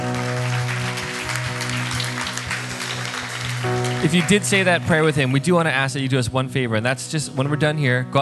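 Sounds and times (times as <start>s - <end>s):
applause from a church audience for a pastor: 0.0s - 5.7s
speech: 4.0s - 8.2s.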